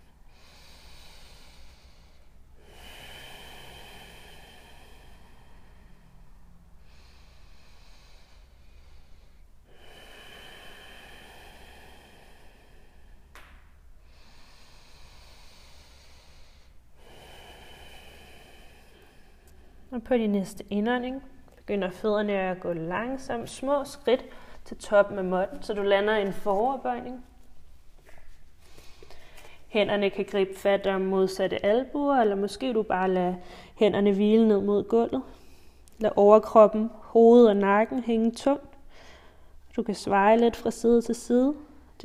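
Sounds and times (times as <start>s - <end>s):
slow deep breathing during a yoga pose: 0.0s - 20.0s, 21.1s - 29.8s, 33.4s - 33.8s, 35.2s - 36.0s, 38.7s - 39.8s
speech: 20.0s - 27.3s, 29.7s - 35.4s, 36.0s - 38.7s, 39.8s - 42.0s.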